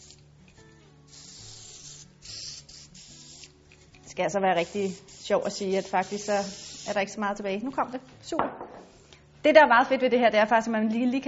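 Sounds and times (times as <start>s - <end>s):
spray bottle spraying glue onto printed paper: 0.0s - 3.6s, 4.6s - 7.2s
speech: 4.2s - 8.8s, 9.4s - 11.2s.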